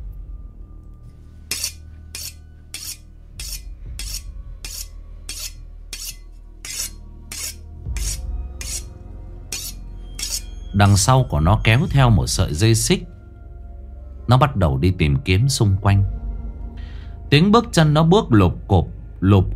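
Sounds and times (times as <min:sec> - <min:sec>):
quiet low hum: 0:00.0 - 0:14.3, 0:15.1 - 0:18.0
large butcher knife blades scraping against each other: 0:01.5 - 0:08.9, 0:09.5 - 0:10.7
speech: 0:10.8 - 0:13.1, 0:14.3 - 0:16.2, 0:17.3 - 0:19.5.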